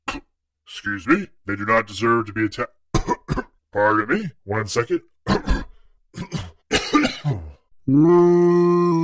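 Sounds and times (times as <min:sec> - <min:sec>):
speech: 0:00.7 - 0:02.8, 0:03.7 - 0:05.6, 0:07.9 - 0:08.9
person coughing up harshly: 0:03.0 - 0:03.6, 0:05.3 - 0:07.6.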